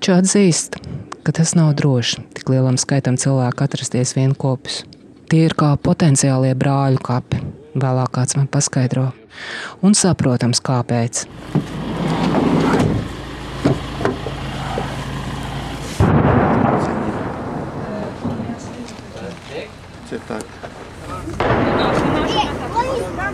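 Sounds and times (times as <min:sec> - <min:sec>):
outdoor noise: 0:00.0 - 0:23.3
speech: 0:00.1 - 0:12.9
distant shelling explosions booming with rumble: 0:11.3 - 0:23.3.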